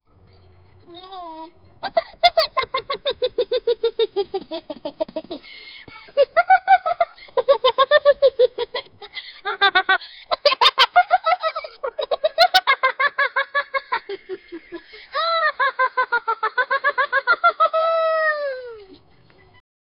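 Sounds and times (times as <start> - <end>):
hyenas laughing: 1.2 - 18.8.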